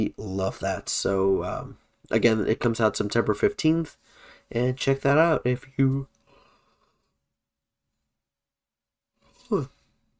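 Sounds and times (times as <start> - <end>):
speech: 0.0 - 6.1, 9.5 - 9.8
drawn-out yawn with breathy inhale and voiced groan: 9.4 - 9.8.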